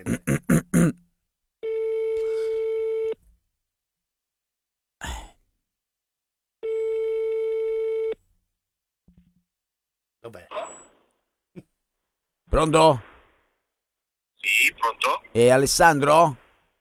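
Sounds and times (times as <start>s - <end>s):
ringback tone of an outgoing telephone call: 1.6s - 3.2s, 6.6s - 8.2s
speech: 12.6s - 13.1s, 14.8s - 16.4s.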